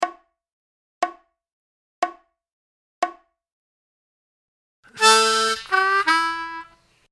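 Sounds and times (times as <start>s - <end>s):
slow harmonica blues lick: 4.9s - 6.7s.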